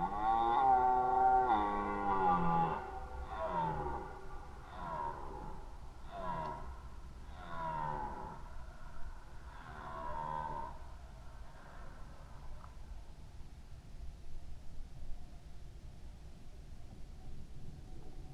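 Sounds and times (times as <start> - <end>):
red deer roaring in rut: 0.0 - 8.5, 9.5 - 10.8.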